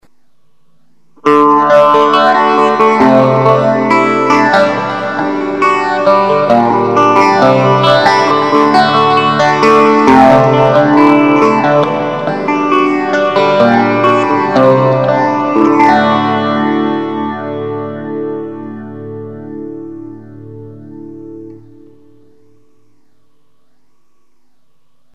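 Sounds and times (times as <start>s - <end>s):
electric guitar through phase effect and bridge pickups: 1.2s - 22.8s.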